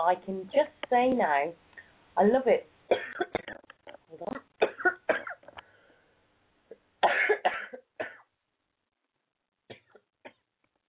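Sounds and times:
speech: 0.0 - 3.0
person coughing from a tickle in the throat: 2.9 - 3.6, 4.6 - 5.5, 6.7 - 8.3.

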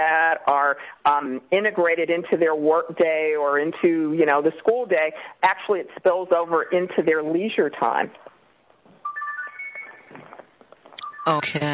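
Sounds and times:
speech: 0.0 - 8.3, 11.2 - 11.7
mobile phone ringtone with rising electronic melody: 9.0 - 10.4, 11.0 - 11.7.

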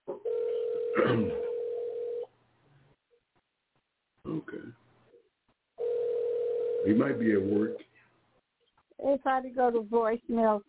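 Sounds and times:
ringback tone from an outgoing phone call: 0.3 - 2.2, 5.8 - 7.7
speech: 1.0 - 1.4, 6.9 - 7.9, 9.1 - 10.6.

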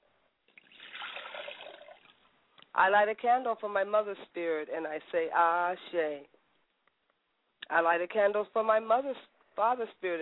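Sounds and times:
liquid poured out as a libation in a ritual offering: 0.5 - 2.2
speech: 2.8 - 6.4, 7.7 - 10.2.

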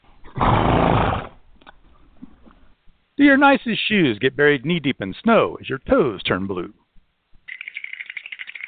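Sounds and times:
horse neighing: 0.2 - 1.4
speech: 3.2 - 6.8.

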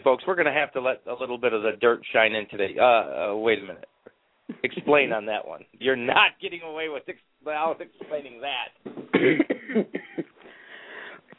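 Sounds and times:
speech: 0.0 - 3.9, 4.5 - 10.1
throat-clearing: 9.0 - 10.2
person with a cold coughing after laughing: 9.0 - 10.3
wheezy breath: 10.4 - 11.3.

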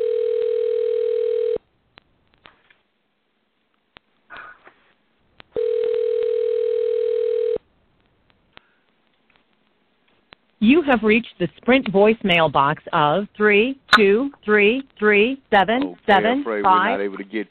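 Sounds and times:
ringback tones from an outgoing phone call: 0.0 - 1.6, 5.6 - 7.6
speech: 10.8 - 17.4.

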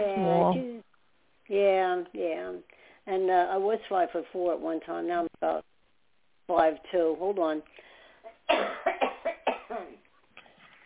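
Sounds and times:
speech: 0.0 - 0.7, 1.5 - 5.7, 6.5 - 7.9
person coughing in a rapid fit: 8.5 - 10.0.

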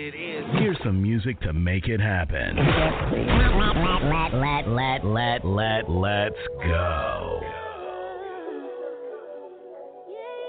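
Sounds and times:
speech: 0.0 - 7.6
duck quacking: 3.4 - 6.8.

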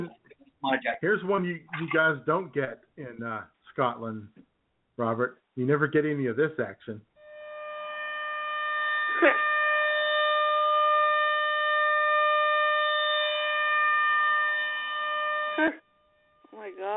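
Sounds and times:
speech: 0.0 - 4.4, 5.0 - 7.1, 15.6 - 15.8
tornado warning siren droning: 7.2 - 16.9.

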